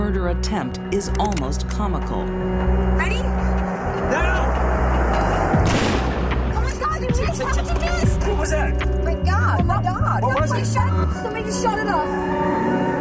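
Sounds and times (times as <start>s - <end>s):
speech: 0.0s - 4.3s, 7.0s - 12.9s
low rumble: 1.6s - 9.8s
gunshot aimed at a vehicle's gas tank: 5.6s - 6.5s.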